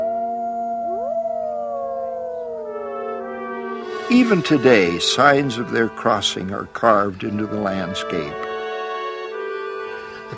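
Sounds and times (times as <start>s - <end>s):
several wolves howling in chorus: 0.0s - 5.0s
speech: 4.1s - 8.4s.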